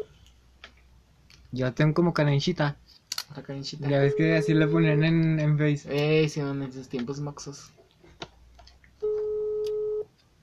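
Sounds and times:
speech: 1.5s - 7.8s
unanswered phone call ringback tone: 3.9s - 4.8s, 9.0s - 10.1s.

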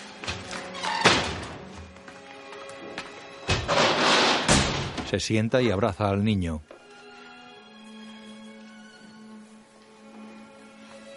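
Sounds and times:
doors of a bar closing with heavy thunks: 0.3s - 1.9s, 3.4s - 5.2s
speech: 5.1s - 6.7s.

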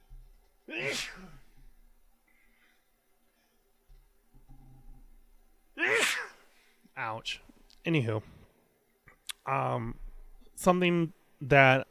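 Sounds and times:
person sneezing while driving a car: 0.7s - 1.4s, 5.8s - 6.5s
speech: 0.7s - 1.4s, 7.2s - 8.4s, 9.5s - 10.0s, 10.6s - 11.8s.

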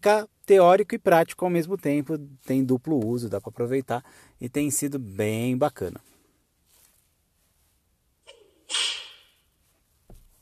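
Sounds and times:
speech: 0.0s - 6.1s, 8.7s - 9.0s
whip cracking: 8.7s - 9.4s.

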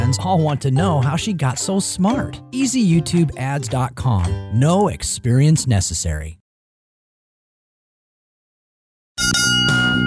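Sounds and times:
speech: 0.1s - 6.4s
bright bell chimes: 9.2s - 10.0s.

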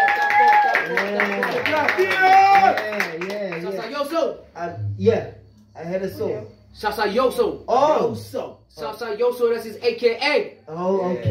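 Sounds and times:
round of applause: 0.0s - 3.9s
speech: 1.2s - 3.2s, 4.0s - 11.2s.

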